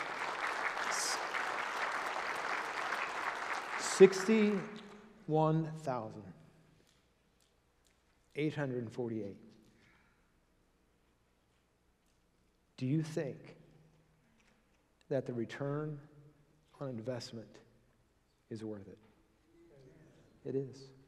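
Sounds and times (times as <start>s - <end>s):
audience applauding in a church service: 0.0s - 4.9s
speech: 4.0s - 6.4s, 8.4s - 9.5s, 12.8s - 13.6s, 15.1s - 16.1s, 16.8s - 17.6s, 18.5s - 19.1s, 20.4s - 21.0s.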